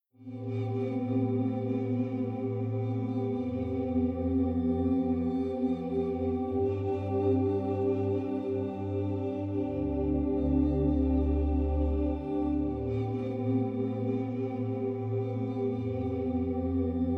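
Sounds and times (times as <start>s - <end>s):
future bass synth chord pad: 0.3s - 17.1s.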